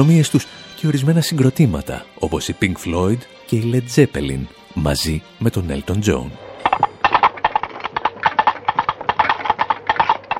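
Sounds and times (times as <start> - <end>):
speech: 0.0 - 6.9
hollow empty coconut shells knocked together imitating galloping horse hooves: 6.6 - 10.3.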